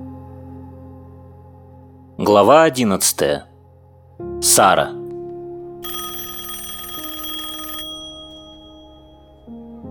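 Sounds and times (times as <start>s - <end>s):
speech: 2.2s - 3.5s, 4.4s - 5.0s
telephone ringing with a bright shrill burst: 5.8s - 9.6s.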